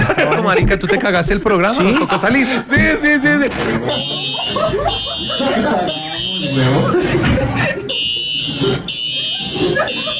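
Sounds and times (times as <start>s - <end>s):
several people laughing: 0.0s - 10.1s
speech: 0.5s - 7.8s, 8.6s - 10.0s
shrill fire alarm blaring: 3.6s - 7.0s, 7.8s - 10.1s.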